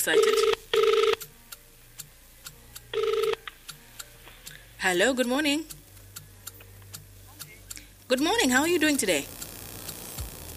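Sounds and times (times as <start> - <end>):
speech: 0.0 - 0.8, 4.9 - 5.8, 8.1 - 9.4
phone line ringing on an outgoing call: 0.0 - 1.2, 2.9 - 3.4.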